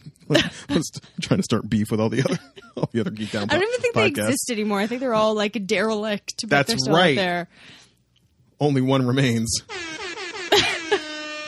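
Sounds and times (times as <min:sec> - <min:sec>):
speech: 0:00.3 - 0:07.8, 0:08.6 - 0:10.0
air horn blast: 0:09.7 - 0:11.4.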